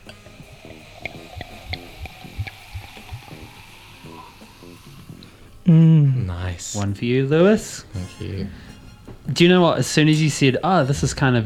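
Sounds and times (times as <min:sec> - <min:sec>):
sparkling pet nat wine poured into a glass: 0:00.0 - 0:05.6
sparkling wine bubbles fizzing and crackling: 0:00.0 - 0:05.7
speech: 0:05.7 - 0:08.7, 0:09.3 - 0:11.4.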